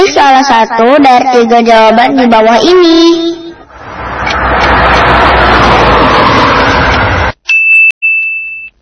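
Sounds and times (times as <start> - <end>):
speech: 0.1 - 3.4
car engine roaring: 3.5 - 7.4
bright high electronic chime tones: 7.5 - 8.8.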